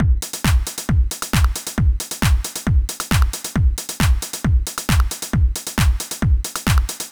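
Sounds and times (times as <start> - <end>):
basic techno beat: 0.0 - 7.0.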